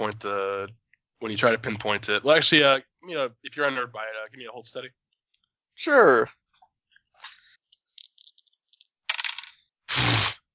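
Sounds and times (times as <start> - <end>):
speech: 0.1 - 5.0, 5.8 - 6.4
dice rattling and clicking across a hard tabletop: 8.0 - 9.6.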